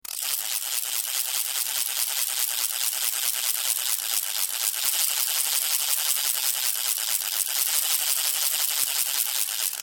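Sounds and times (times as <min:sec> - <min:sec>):
carraca ratchet rattle: 0:00.0 - 0:09.8.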